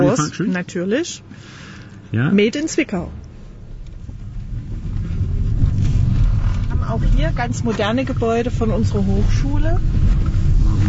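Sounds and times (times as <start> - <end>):
electric car interior low rumble while driving: 0.0 - 10.8
road and wind noise in a moving electric car: 0.0 - 10.8
speech: 0.1 - 3.2, 6.9 - 10.4.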